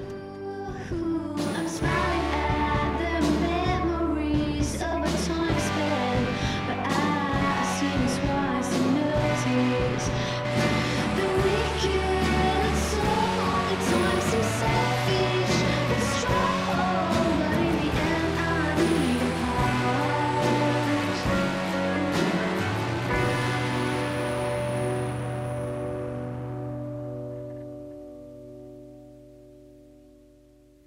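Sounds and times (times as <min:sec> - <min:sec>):
full band song with bass, sustained chords and bright percussion: 0:00.0 - 0:27.0.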